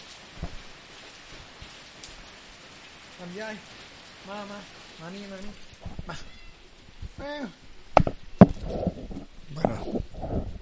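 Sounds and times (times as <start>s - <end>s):
speech: 3.2s - 6.4s, 7.2s - 8.1s, 8.7s - 10.1s
cat meowing: 6.1s - 6.7s
sharp clicks or knocks: 8.0s - 8.6s.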